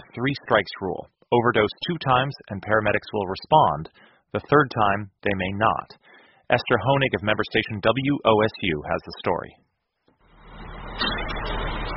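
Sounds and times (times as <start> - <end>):
speech: 0.2 - 9.7
fire truck engine rumble arriving at fire station after a call: 10.3 - 11.9.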